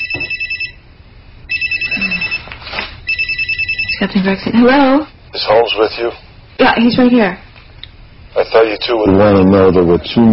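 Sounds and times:
phone ringing in warbling electronic bursts: 0.0 - 0.9, 1.5 - 5.0, 9.1 - 9.8
speech: 4.0 - 7.4, 8.4 - 10.3.

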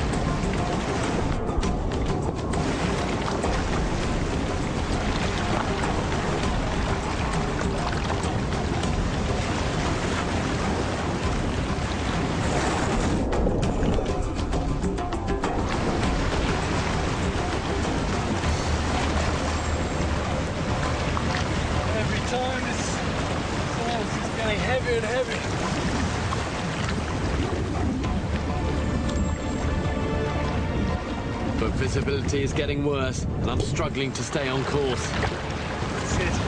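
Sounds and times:
rain at sea: 0.0 - 14.7, 15.6 - 31.4
loud constant wind buffeting the microphone on a boat: 0.0 - 36.4
rough water churning and splashing against a small boat: 0.0 - 36.4
speech: 32.0 - 35.4.

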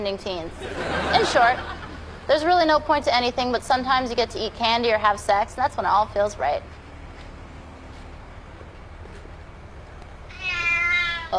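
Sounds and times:
speech: 0.0 - 6.8
laughter: 0.5 - 2.3
cat meowing: 10.3 - 11.3.

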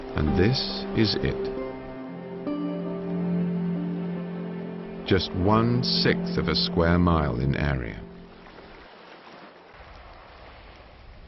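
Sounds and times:
ocean surf around a small Pacific island: 0.0 - 11.2
speech: 0.2 - 1.6, 5.1 - 8.0.

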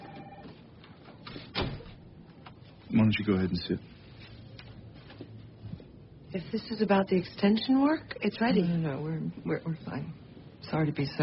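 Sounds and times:
faint hum: 0.0 - 11.2
door sliding and swinging shut with a muffled thud: 1.4 - 2.0
speech: 2.9 - 4.0, 6.3 - 11.2.

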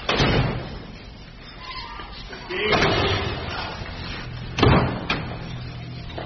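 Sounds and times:
doors slamming shut during a room search: 0.0 - 0.8, 2.6 - 3.6, 4.5 - 5.5
busy background of movement: 0.8 - 6.2.

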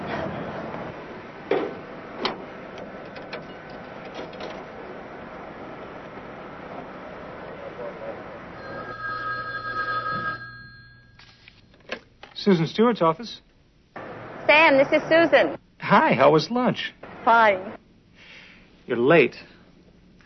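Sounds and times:
steady electronic telephone ringback tone: 8.6 - 11.0
telephone ringing on the line during an outgoing call: 8.6 - 11.4
speech: 12.4 - 13.5, 14.7 - 17.8, 18.9 - 19.5.

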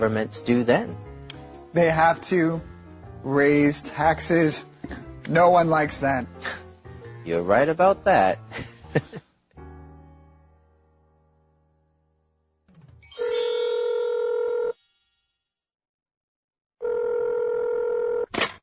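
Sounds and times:
speech: 0.0 - 1.1, 1.7 - 6.4, 7.3 - 9.1
chime: 13.0 - 15.5
telephone ringing in electronic bursts: 13.2 - 14.8, 16.8 - 18.3.

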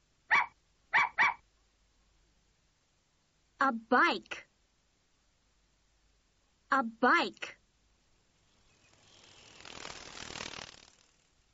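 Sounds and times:
puppy barking: 0.3 - 1.4
speech: 3.6 - 4.4, 6.7 - 7.6.

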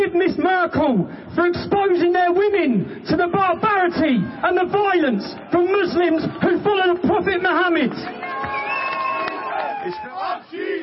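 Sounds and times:
speech: 0.0 - 8.7, 9.8 - 10.8
large crowd chanting slogans at a rally: 9.3 - 10.8.

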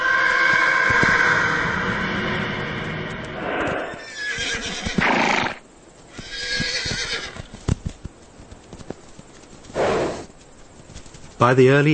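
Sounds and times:
mustang horses neighing: 0.0 - 1.8, 3.7 - 7.6
mustang hoofbeats clopping on the ground: 0.0 - 2.0, 2.8 - 11.9
mustang horses snorting: 3.6 - 7.6, 8.8 - 10.8
speech: 11.4 - 11.9.

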